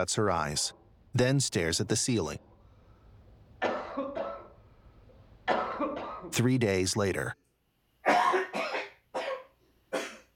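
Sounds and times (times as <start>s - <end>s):
speech: 0.0s - 2.5s, 6.3s - 7.4s
harsh breathy coughs: 3.6s - 4.6s, 5.5s - 6.4s, 8.0s - 10.3s.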